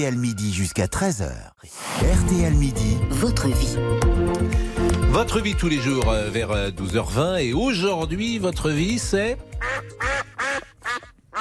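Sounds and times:
speech: 0:00.0 - 0:10.1
duck quacking: 0:09.6 - 0:11.3.

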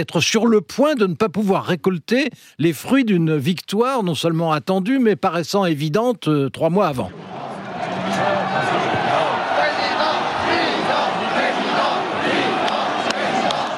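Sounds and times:
speech: 0:00.0 - 0:07.3
large crowd at a political rally in France chanting and cheering: 0:07.1 - 0:13.7.

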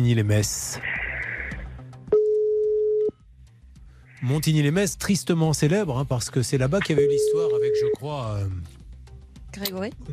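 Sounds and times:
speech: 0:00.0 - 0:00.9, 0:04.2 - 0:08.8, 0:09.6 - 0:10.1
ringback tone of an outgoing telephone call: 0:02.1 - 0:03.1, 0:06.9 - 0:08.0.

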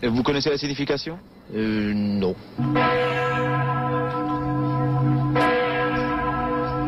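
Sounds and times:
speech: 0:00.0 - 0:03.7
large church bell ringing the evening curfew: 0:02.6 - 0:06.8.

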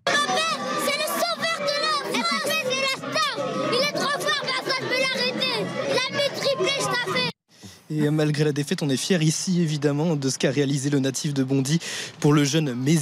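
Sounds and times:
children cheering and shrieking at a football goal in a restaurant: 0:00.0 - 0:07.4
speech: 0:07.9 - 0:13.0.

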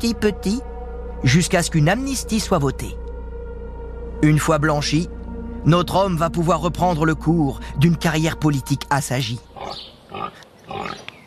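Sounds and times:
speech: 0:00.0 - 0:03.0, 0:04.2 - 0:09.9
pig grunting: 0:09.6 - 0:11.1.

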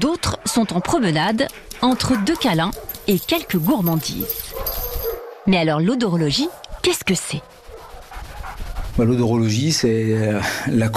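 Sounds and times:
dog barking and yipping in a transport crate: 0:00.0 - 0:09.2
noise: 0:00.0 - 0:10.9
speech: 0:00.1 - 0:04.8, 0:05.5 - 0:07.6, 0:09.0 - 0:10.9
dog whimpering in a large transport crate: 0:00.1 - 0:05.2.

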